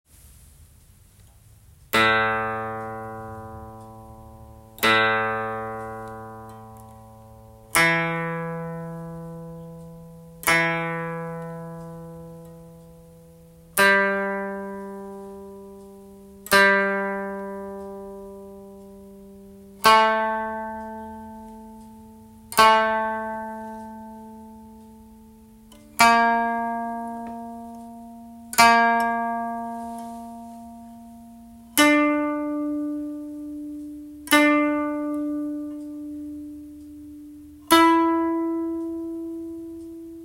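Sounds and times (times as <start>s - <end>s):
koto tuned to C: 0.8s - 40.2s.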